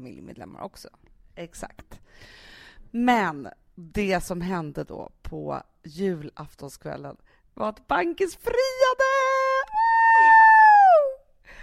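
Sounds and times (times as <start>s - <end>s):
speech: 0.0s - 9.1s
person imitating a high-pitched scream: 9.6s - 11.2s.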